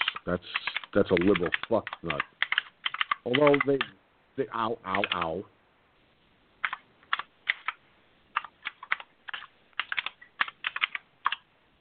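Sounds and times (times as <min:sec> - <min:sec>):
clattery typing on a computer keyboard: 0:00.0 - 0:03.9, 0:04.9 - 0:05.3, 0:06.6 - 0:07.8, 0:08.4 - 0:11.4
speech: 0:00.2 - 0:02.3, 0:03.2 - 0:05.6.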